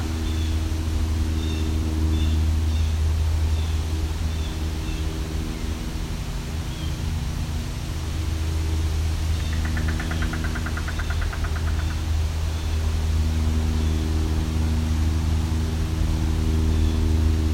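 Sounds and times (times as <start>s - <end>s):
airplane engine drone passing overhead: 0.0s - 17.5s
traffic noise: 0.0s - 17.5s.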